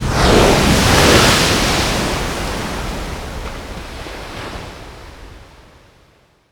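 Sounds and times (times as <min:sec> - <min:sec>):
wave crashing: 0:00.0 - 0:05.8.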